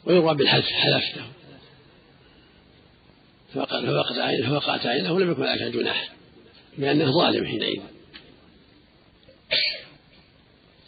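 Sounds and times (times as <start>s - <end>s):
speech: 0.0s - 1.4s, 3.5s - 6.2s, 6.8s - 8.0s
sneeze: 9.5s - 10.0s.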